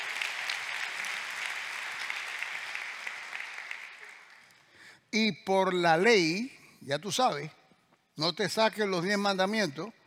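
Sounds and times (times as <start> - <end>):
audience applause: 0.0 - 4.6
speech: 5.1 - 7.6, 8.2 - 10.0.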